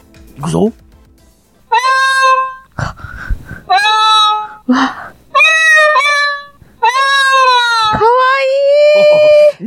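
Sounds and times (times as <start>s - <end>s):
speech: 0.4s - 0.8s
otamatone imitating cat meows: 1.7s - 2.8s, 3.7s - 4.6s, 5.3s - 9.4s.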